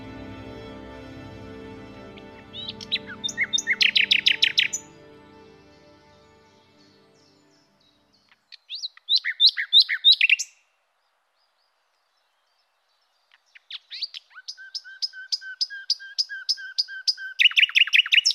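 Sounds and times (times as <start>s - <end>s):
low music: 0.0s - 8.2s
nightingale singing trills and whistles: 2.4s - 5.0s, 6.1s - 18.3s.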